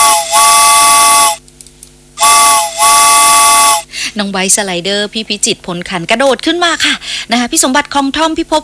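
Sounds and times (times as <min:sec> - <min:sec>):
steam train whistle as train departs: 0:00.0 - 0:01.4, 0:02.2 - 0:03.9
speech: 0:04.2 - 0:08.6.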